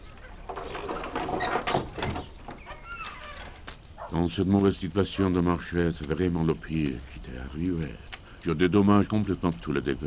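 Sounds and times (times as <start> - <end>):
faint rattling: 0.0 - 9.8
door pushed shut with a creak of its mechanism: 0.2 - 3.7
speech: 4.1 - 10.0.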